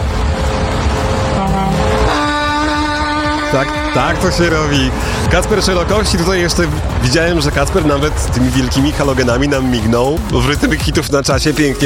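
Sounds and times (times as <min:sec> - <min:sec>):
large truck horn honking: 0:00.0 - 0:06.0
road noise: 0:00.0 - 0:11.8
truck engine rumbling: 0:00.0 - 0:11.8
speech: 0:03.6 - 0:11.8.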